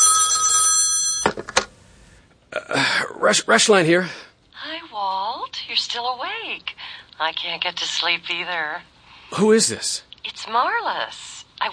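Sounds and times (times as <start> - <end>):
telephone ringing in a hotel room in Milwaukee: 0.0 - 1.6
speech: 3.2 - 4.3, 5.8 - 11.7.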